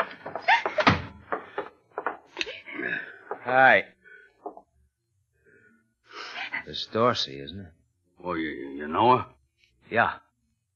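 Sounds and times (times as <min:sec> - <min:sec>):
door opening and shutting: 0:00.0 - 0:02.3
speech: 0:03.5 - 0:03.9, 0:06.7 - 0:10.2.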